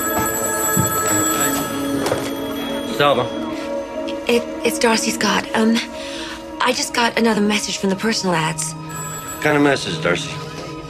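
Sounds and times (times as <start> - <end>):
office telephone ringing with an electronic trill: 0.0 - 3.8, 8.8 - 10.8
speech: 3.0 - 3.4, 4.3 - 10.4.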